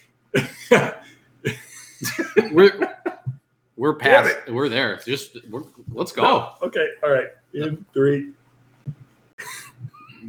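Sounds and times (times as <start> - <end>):
speech: 0.3 - 0.9, 3.8 - 9.0
person coughing before a live recording: 0.4 - 3.3
laughter: 1.5 - 3.3, 9.4 - 10.2.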